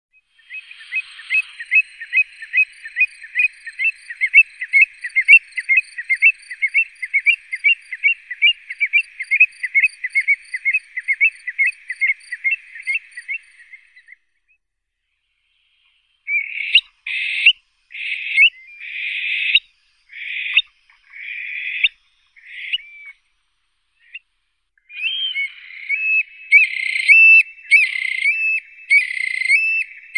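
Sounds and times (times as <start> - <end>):
Eurasian stone-curlew Burhinus oedicnemus calling: 0.2 - 14.2, 16.3 - 23.2, 24.9 - 30.1.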